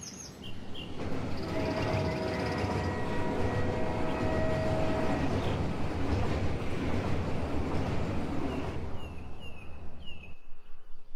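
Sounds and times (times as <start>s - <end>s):
train rumbling along the rails: 0.3s - 11.1s.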